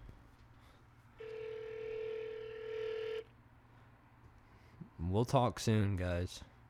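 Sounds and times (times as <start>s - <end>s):
steady buzzing ringback tone of a phone call to a store: 1.2s - 3.3s
speech: 5.1s - 6.5s.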